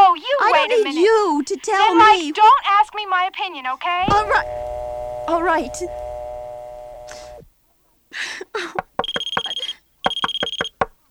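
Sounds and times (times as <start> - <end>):
speech: 0.6 - 4.7, 5.3 - 6.0, 8.1 - 8.9
alarm clock ringing: 9.0 - 10.8.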